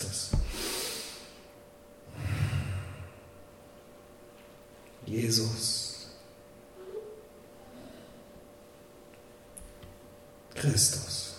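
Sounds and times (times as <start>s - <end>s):
person breathing slowly in and out during a quiet prayer: 0.4s - 1.4s, 2.1s - 3.3s
speech: 5.1s - 5.8s, 10.6s - 11.1s.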